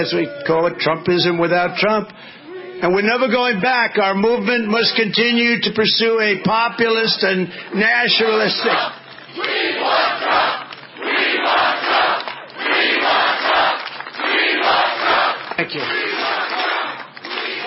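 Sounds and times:
speech: 0.0 - 10.6
large rally crowd chanting outdoors beside cornfields: 8.1 - 17.6.

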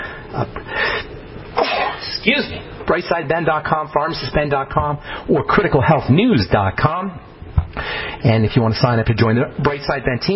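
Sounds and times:
man sneezing while speaking on air: 1.6 - 2.2
speech: 2.2 - 10.3.

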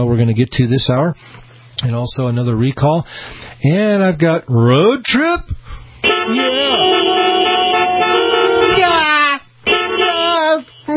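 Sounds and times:
speech: 0.0 - 5.7, 6.3 - 7.2
car horns honking: 6.0 - 10.9.

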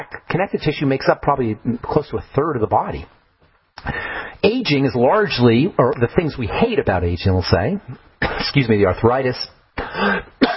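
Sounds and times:
speech: 0.0 - 3.2, 3.8 - 10.3
speaker clearing throat: 8.2 - 8.5, 9.8 - 10.5.

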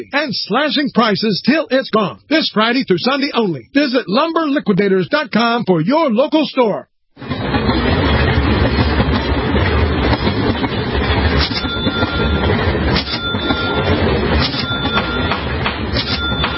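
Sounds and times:
speech: 0.0 - 7.9
freight train rumbling along rails: 7.2 - 16.5
freight train metallic squeals: 11.4 - 15.4.

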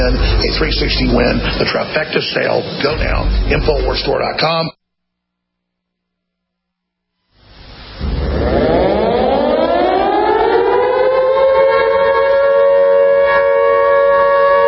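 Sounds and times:
speech: 0.5 - 4.8
civil defense siren wailing: 7.8 - 14.6.

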